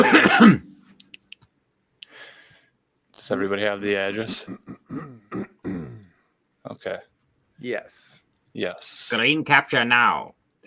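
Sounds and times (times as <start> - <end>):
single harsh throaty cough: 0.0 - 0.7, 4.3 - 6.1
speech: 0.0 - 0.7, 3.3 - 5.5, 6.6 - 10.6.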